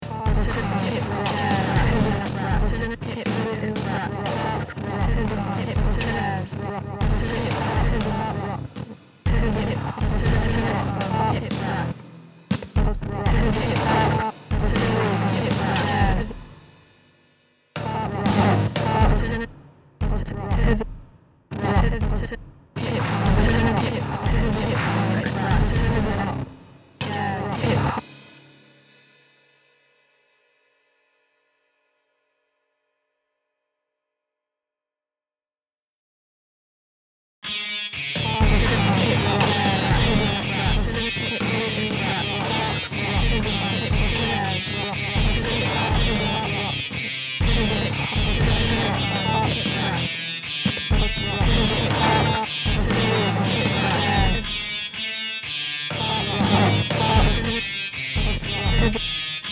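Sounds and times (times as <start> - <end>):
heavy metal music: 0.0 - 16.7, 17.8 - 28.3, 37.5 - 59.4.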